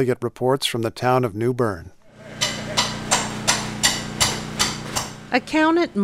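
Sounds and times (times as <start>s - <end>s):
speech: 0.0s - 2.0s, 5.3s - 6.0s
steady low mechanical hum: 2.0s - 6.0s
hammer striking drenched drywall torn out of a flooded office: 2.4s - 5.2s.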